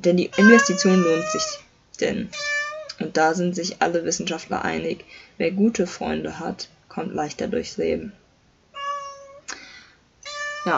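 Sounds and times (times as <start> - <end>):
speech: 0.0 - 8.2
cat meowing loudly and insistently: 0.3 - 1.6, 2.3 - 2.9, 8.8 - 9.4, 10.2 - 10.7.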